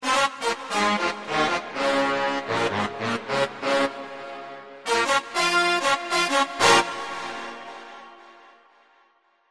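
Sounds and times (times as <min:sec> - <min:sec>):
rock and roll brass: 0:00.0 - 0:09.0.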